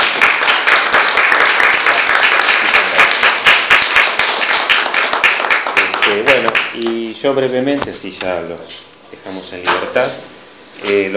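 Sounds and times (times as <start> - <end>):
audience at a summer lecture series applauding: 0.0 - 7.1
speech: 7.2 - 11.1.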